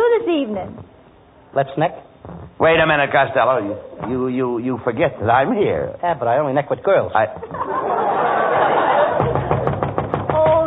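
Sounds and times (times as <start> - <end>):
speech: 0.3 - 8.0
people laughing: 7.4 - 9.8
sharp raps on a door: 9.2 - 10.6.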